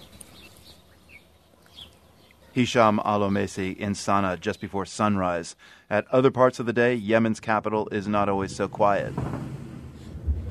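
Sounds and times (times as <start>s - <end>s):
bird chirps at dawn: 0.0s - 5.8s
low steady outdoor hush: 0.0s - 10.4s
speech: 2.6s - 9.5s.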